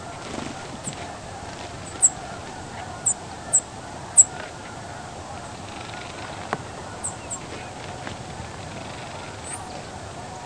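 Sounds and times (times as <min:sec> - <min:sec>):
soft low background noise: 0:00.0 - 0:10.4
savannah sparrow calls in Texas: 0:00.1 - 0:04.6, 0:05.6 - 0:07.9, 0:08.7 - 0:09.9.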